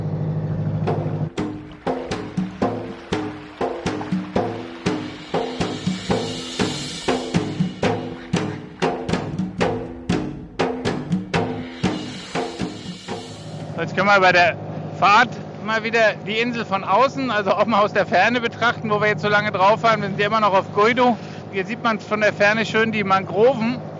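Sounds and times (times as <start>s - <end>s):
motorboat engine low rumble: 0.0s - 23.9s
motorboat hull slapping the water: 0.9s - 12.9s
speech: 13.9s - 23.9s.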